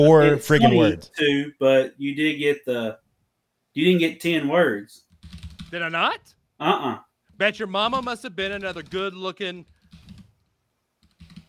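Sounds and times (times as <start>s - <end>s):
speech: 0.0s - 3.0s, 3.8s - 9.7s
typing on a computer keyboard: 5.0s - 5.8s, 7.3s - 10.4s, 11.0s - 11.4s.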